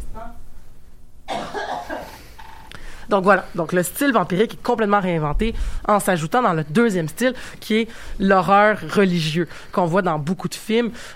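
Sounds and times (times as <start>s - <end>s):
harsh cough: 1.3s - 2.3s
faint breath noise: 2.0s - 3.1s, 5.5s - 5.9s, 7.3s - 8.2s, 10.9s - 11.1s
speech: 3.1s - 11.1s.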